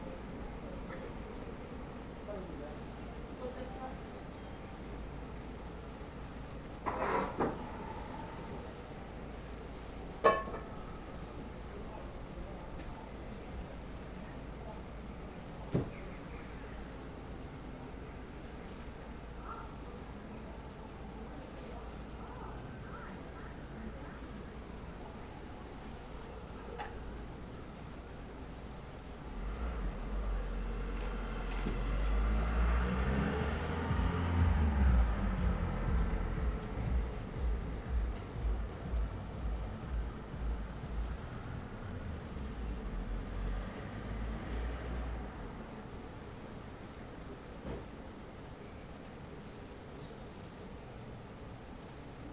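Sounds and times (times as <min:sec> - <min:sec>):
dusk ambience at a desk: 0:00.0 - 0:47.6.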